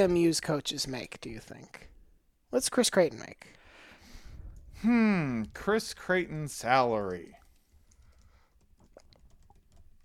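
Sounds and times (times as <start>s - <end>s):
speech: 0.0s - 1.9s, 2.5s - 3.6s, 4.8s - 7.4s
typing on a computer keyboard: 7.6s - 10.0s.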